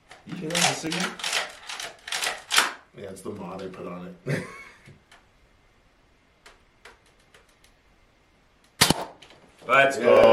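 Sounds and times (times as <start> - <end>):
speech: 0.3 - 1.3, 3.0 - 5.0, 9.7 - 10.3
faint clicks: 6.4 - 7.8
gunshot in a video game: 8.8 - 9.2.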